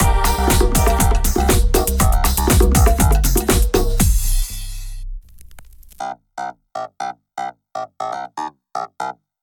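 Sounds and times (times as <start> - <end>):
outro music: 0.0 - 5.8.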